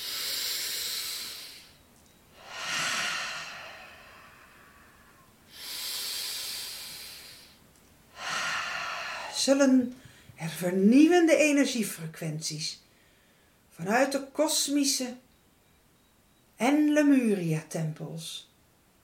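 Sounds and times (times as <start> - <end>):
deep breathing in and out: 0.0 - 10.4, 12.8 - 13.7
speech: 9.4 - 12.8, 13.8 - 15.2, 16.6 - 18.5.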